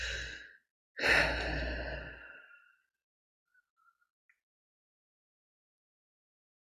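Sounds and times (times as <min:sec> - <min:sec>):
deep breath in: 0:00.0 - 0:02.8.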